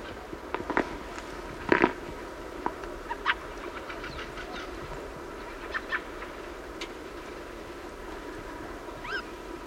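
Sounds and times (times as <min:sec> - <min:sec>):
steady low hiss: 0:00.0 - 0:09.6
flock of nearly a hundred thrushes giving short calls: 0:03.1 - 0:06.2, 0:09.0 - 0:09.4.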